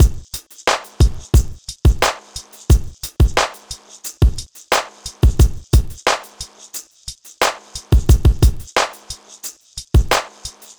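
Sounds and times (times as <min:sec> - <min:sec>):
hip hop drums: 0:00.0 - 0:10.7.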